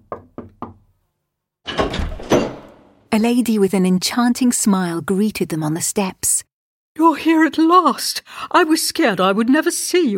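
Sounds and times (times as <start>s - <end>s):
knocking on a wooden door: 0.0s - 0.8s
speech: 3.1s - 10.1s.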